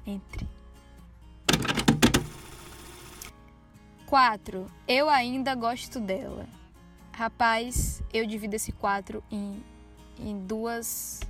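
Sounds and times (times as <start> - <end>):
speech: 0.1 - 0.5, 4.1 - 6.6, 7.2 - 11.2
door latch clicks and rattles: 1.5 - 2.3
door opening: 1.5 - 2.3.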